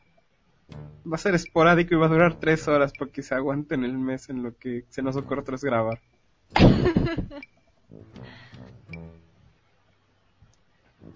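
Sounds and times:
strained throaty sounds: 0.6 - 6.0, 6.6 - 9.9, 10.9 - 11.1
speech: 1.0 - 8.8
person coughing with a stifled cough caught in the throat: 6.6 - 7.3.

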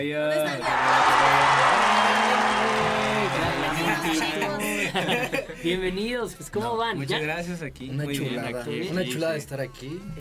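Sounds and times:
speech: 0.0 - 1.4, 5.0 - 10.1
crowd applauding: 0.6 - 4.7
laughter: 0.6 - 5.8.

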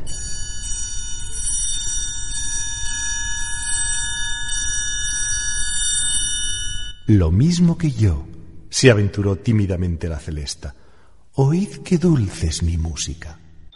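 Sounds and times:
triangle struck repeatedly: 0.0 - 8.1
speech: 7.1 - 10.8, 11.4 - 13.4.

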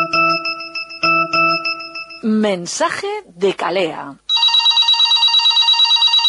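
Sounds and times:
mobile phone ringing with a shrill electronic trill: 0.0 - 2.3, 4.3 - 6.2
speech: 2.2 - 4.2.

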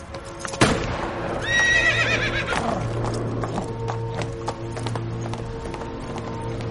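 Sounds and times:
restless horse with rider neighing: 1.4 - 2.9
horse hoof clops from stamping: 2.2 - 6.7.

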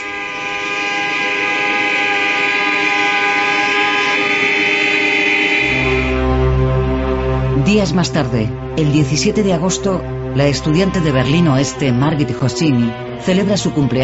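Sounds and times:
car horns blaring in protest: 0.0 - 14.0
speech: 7.7 - 14.0.

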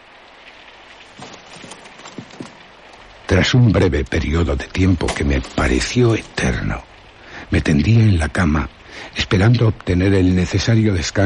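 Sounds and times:
steady rain: 0.0 - 11.2
louder irregular drips or taps: 1.0 - 7.5
speech: 3.3 - 6.9, 7.5 - 11.2.

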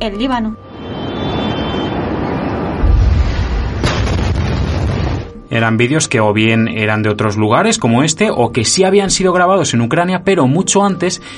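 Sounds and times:
speech: 0.0 - 0.7, 5.5 - 11.3
steady roaring noise: 0.6 - 4.6
deep explosion booming in recorded war footage: 1.1 - 5.5
sharp crack: 2.7 - 5.4.

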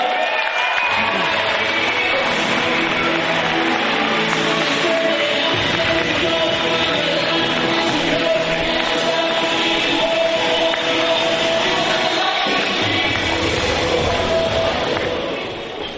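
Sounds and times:
scattered cheers: 0.0 - 5.5
large audience applauding at an event: 0.0 - 15.2
crowd noise: 0.0 - 15.9.

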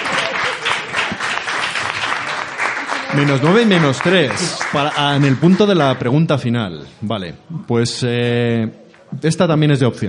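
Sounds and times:
audience applause for game show contestants: 0.0 - 6.2
speech: 3.2 - 10.0.

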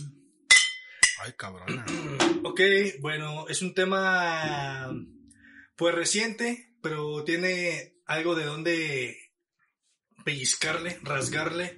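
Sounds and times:
glasses clinking in a toast: 0.5 - 1.3
speech: 1.2 - 5.2, 5.8 - 9.2, 10.2 - 11.7.

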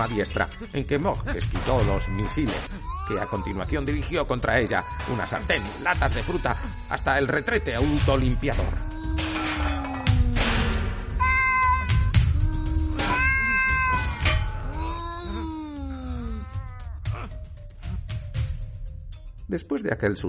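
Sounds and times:
speech: 0.0 - 8.9, 19.5 - 20.2
cat meowing and caterwauling: 8.6 - 16.9.

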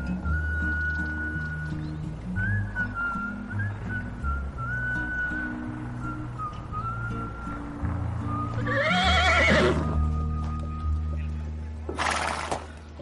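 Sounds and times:
horse hooves clopping: 0.0 - 13.0
horse neighing: 8.6 - 10.0.

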